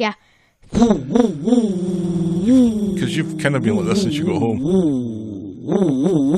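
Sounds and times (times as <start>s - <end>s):
speech: 0.0s - 6.3s
voice imitating a revving motorcycle engine: 0.7s - 6.3s.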